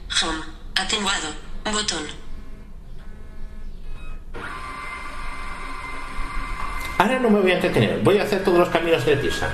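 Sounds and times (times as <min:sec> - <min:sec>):
speech: 0:00.2 - 0:02.2, 0:07.0 - 0:09.5
multifunction printer scanner carriage whirring back across the glass: 0:04.4 - 0:09.5.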